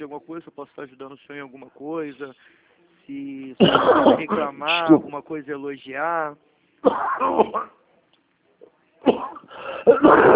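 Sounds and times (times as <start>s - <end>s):
speech: 0.0s - 7.8s, 9.0s - 10.3s
harsh raspy coughs: 3.6s - 5.1s, 6.8s - 7.8s, 9.0s - 10.3s.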